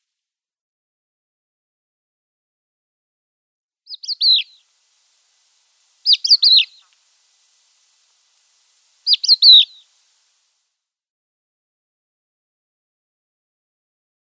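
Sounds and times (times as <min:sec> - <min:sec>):
crested lark flight calls: 0:03.9 - 0:04.6, 0:05.4 - 0:10.2.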